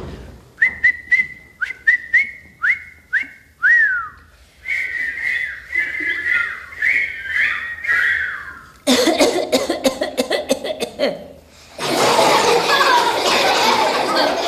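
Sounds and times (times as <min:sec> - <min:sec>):
high whistly tones: 0:00.6 - 0:08.8
person coughing: 0:08.9 - 0:11.4
laughter: 0:11.8 - 0:14.4.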